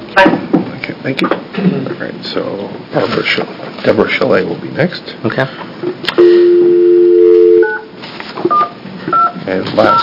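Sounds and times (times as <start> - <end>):
speech: 0.2 - 0.4, 1.0 - 6.4, 9.5 - 10.0
touch-tone beeps of keys being dialed: 6.2 - 7.9, 8.5 - 10.0.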